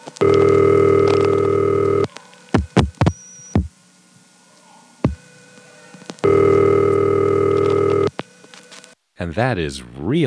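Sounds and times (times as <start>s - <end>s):
buzzy telephone ring: 0.2s - 2.1s, 6.2s - 8.1s
speech: 9.3s - 10.2s.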